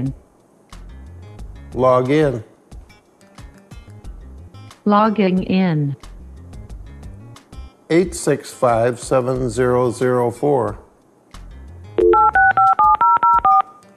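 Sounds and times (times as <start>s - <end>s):
speech: 0.0s - 0.2s, 1.7s - 2.5s, 4.8s - 6.0s, 7.9s - 10.8s
touch-tone beeps of a voice-controlled computer phone dialing: 12.0s - 13.8s.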